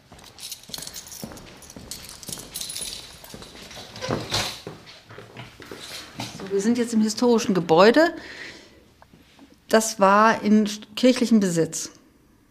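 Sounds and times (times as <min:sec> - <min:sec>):
shuffling steps entering: 0:00.0 - 0:06.9
metal keys jingling and clinking: 0:00.1 - 0:04.7
key turning in the lock: 0:00.5 - 0:04.6
door of a historic half-timbered house opening: 0:01.2 - 0:05.4
speech: 0:06.5 - 0:08.5, 0:09.7 - 0:12.0.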